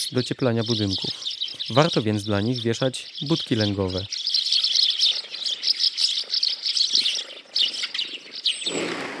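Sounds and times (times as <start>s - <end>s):
speech: 0.0s - 4.2s
flock of Eurasian tree sparrows chirping: 0.0s - 9.1s.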